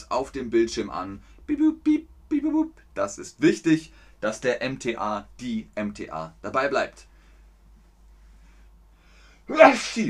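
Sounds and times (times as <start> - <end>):
speech: 0.1 - 7.1, 9.5 - 10.0
person sneezing: 9.5 - 10.0.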